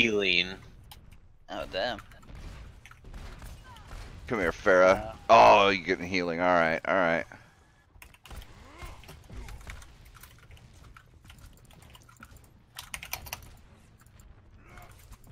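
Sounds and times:
speech: 0:00.0 - 0:00.7, 0:01.5 - 0:02.2, 0:04.3 - 0:07.4
rapid forceful typing on a computer keyboard: 0:09.3 - 0:13.5.

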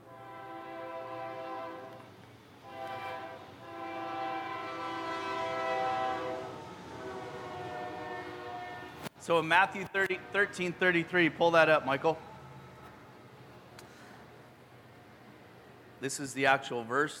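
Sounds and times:
train horn blaring: 0:00.0 - 0:09.1, 0:09.9 - 0:12.8
rumble of a passing train: 0:00.0 - 0:16.1
speech: 0:09.2 - 0:12.3, 0:16.0 - 0:17.1.

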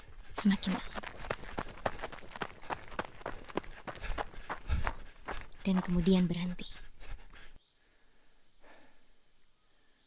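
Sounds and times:
running footsteps: 0:00.0 - 0:07.5
speech: 0:00.4 - 0:01.1, 0:05.6 - 0:06.9.

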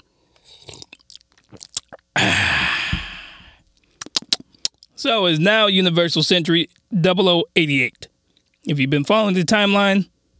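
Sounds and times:
person sipping tea from a cup: 0:00.0 - 0:04.8
long breathy satisfied exhale: 0:02.2 - 0:03.6
speech: 0:05.0 - 0:10.1.

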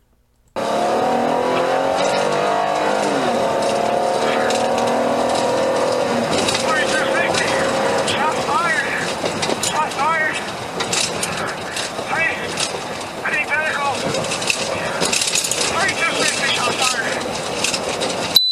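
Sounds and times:
car engine roaring as the vehicle speeds off: 0:00.6 - 0:18.4
car tires squealing and skidding: 0:00.6 - 0:18.4.

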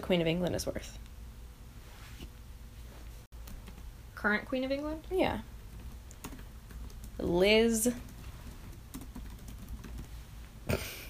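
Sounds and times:
speech: 0:00.1 - 0:01.1, 0:04.2 - 0:05.5, 0:07.2 - 0:08.1
typing on a computer keyboard: 0:05.7 - 0:07.2, 0:07.9 - 0:10.1.

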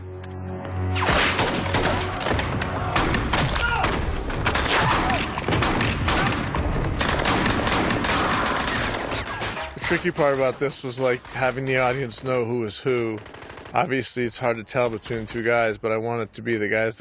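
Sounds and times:
gunfire volley in a film scene: 0:01.0 - 0:09.6
speech: 0:09.9 - 0:16.9.

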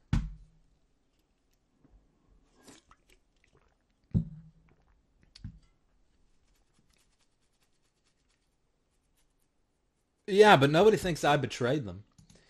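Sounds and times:
person sipping a drink: 0:02.4 - 0:04.0
speech: 0:10.3 - 0:12.1.

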